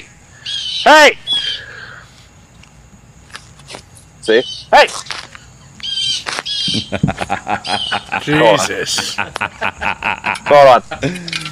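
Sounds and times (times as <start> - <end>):
bird chirping loudly outdoors: 0.3 - 1.9, 4.2 - 8.3
man shouting: 0.8 - 1.3, 4.3 - 4.9
speech: 0.8 - 1.4, 4.3 - 5.1, 6.7 - 11.4
laughter: 6.7 - 11.4.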